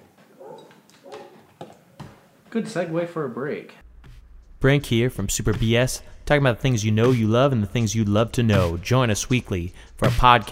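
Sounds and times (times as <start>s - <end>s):
dog barking: 0.4s - 1.4s
speech: 2.5s - 3.8s, 4.6s - 10.5s.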